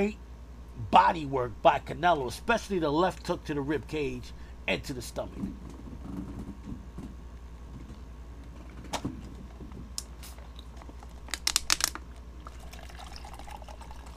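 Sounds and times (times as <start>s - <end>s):
speech: 0.0s - 0.2s, 0.8s - 6.3s
low steady hum: 0.0s - 14.1s
lemonade poured into a glass: 12.4s - 14.1s.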